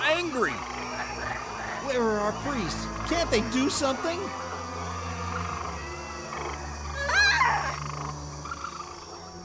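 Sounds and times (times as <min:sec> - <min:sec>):
dense chorus of many frogs croaking: 0:00.0 - 0:09.4
speech: 0:02.3 - 0:04.5.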